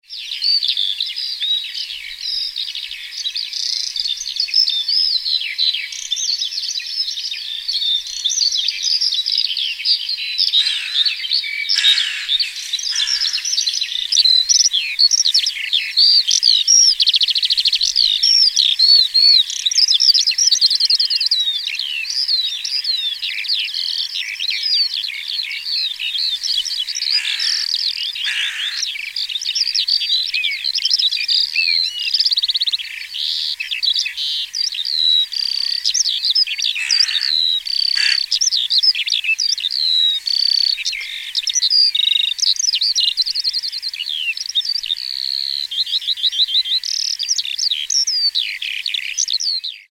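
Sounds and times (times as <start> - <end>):
larks: 0.1 - 49.9.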